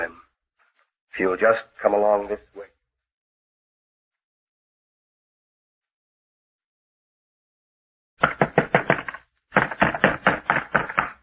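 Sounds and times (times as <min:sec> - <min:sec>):
speech: 0:01.2 - 0:02.7
fist pounding on a door: 0:08.2 - 0:11.2.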